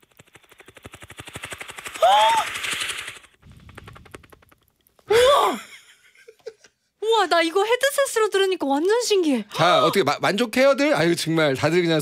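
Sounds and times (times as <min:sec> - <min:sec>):
person imitating a helicopter with their mouth: 0:00.6 - 0:04.4
speech: 0:07.3 - 0:12.0.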